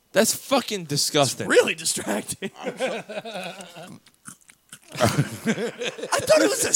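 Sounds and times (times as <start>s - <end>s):
speech: 0.1s - 6.7s
laughter: 2.4s - 4.0s, 4.9s - 6.7s
mouth clicks: 3.4s - 5.0s
chewing close to the microphone: 3.6s - 5.0s.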